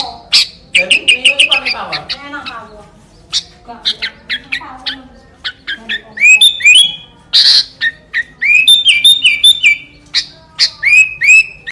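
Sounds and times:
Sooty-headed bulbul singing clear whistled notes: 0.4s - 2.0s, 5.7s - 11.6s.

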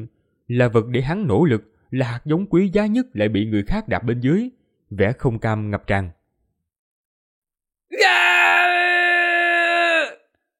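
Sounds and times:
speech: 0.0s - 6.2s
man shouting loudly while fighting back: 7.9s - 10.2s.

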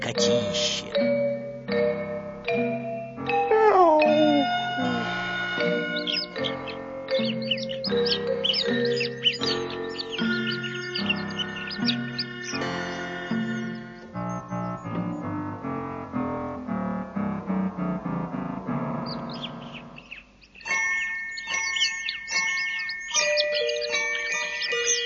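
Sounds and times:
speech: 0.0s - 1.0s
musical background: 0.0s - 25.0s
sparrows chirping on branches in a courtyard: 3.5s - 15.6s, 18.9s - 25.0s.

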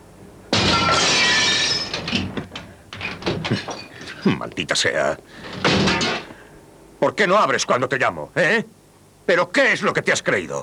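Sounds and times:
glass window smashing: 0.5s - 4.7s, 5.3s - 6.4s
falling glass shards tinkling: 0.6s - 4.4s
speech: 3.5s - 5.8s, 7.0s - 10.6s.

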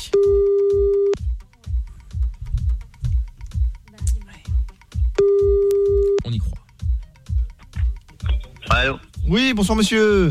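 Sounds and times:
thumping rhythmic music bed: 0.0s - 10.2s
ringback tone of an outgoing phone call: 5.2s - 6.2s
speech: 9.3s - 10.2s.

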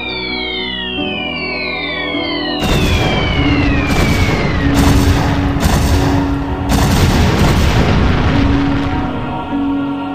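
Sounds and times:
high descending firework whistles: 0.0s - 7.0s
fireworks exploding in crackling bursts and deep booms: 1.0s - 10.0s.

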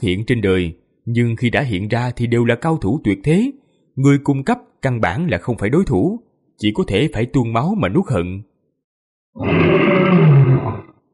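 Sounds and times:
speech: 0.0s - 8.5s, 9.3s - 10.9s
lion roaring loudly: 9.4s - 11.0s.

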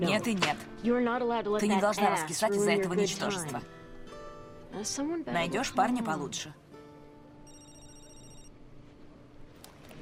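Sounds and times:
speech: 0.0s - 3.8s, 4.7s - 6.6s
mobile phone ringtone: 7.4s - 8.7s.

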